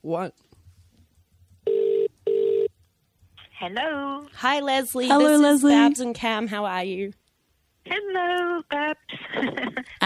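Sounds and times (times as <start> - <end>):
speech: 0.0 - 0.5, 3.6 - 7.2, 7.9 - 10.0
landline call ringing out with mid-pitched electronic tones: 1.7 - 2.7
laughter: 9.1 - 10.0.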